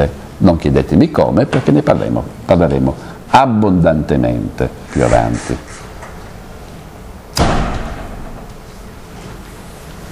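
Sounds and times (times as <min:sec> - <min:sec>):
speech: 0:00.0 - 0:05.8
hiss: 0:00.0 - 0:10.1
window slamming shut: 0:07.4 - 0:08.5.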